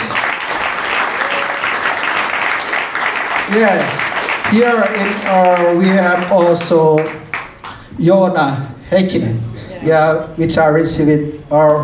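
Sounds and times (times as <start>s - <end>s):
sustained applause from a sizable crowd: 0.0s - 7.8s
speech: 3.5s - 7.2s, 8.0s - 11.8s.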